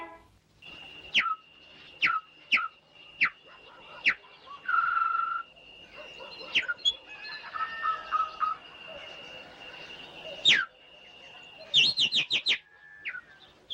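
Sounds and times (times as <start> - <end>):
faint steady high tone hum: 0.1 - 11.7
nightingale singing in a village: 0.6 - 13.7.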